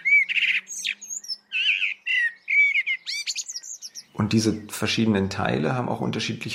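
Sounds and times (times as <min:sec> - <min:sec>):
forest bird high twittering chirps and upward sweeps: 0:00.0 - 0:05.1
speech: 0:04.2 - 0:06.5.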